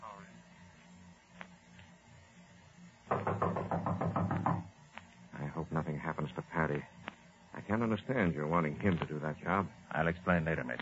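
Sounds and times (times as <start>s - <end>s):
low hum: 0.0s - 10.8s
knocking on the front door of a building: 3.1s - 4.7s
speech: 7.8s - 10.8s.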